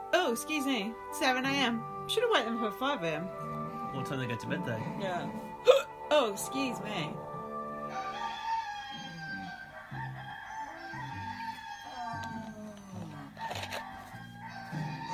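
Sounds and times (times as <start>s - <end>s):
speech: 0.2s - 7.3s
cockerel crowing: 7.8s - 15.1s.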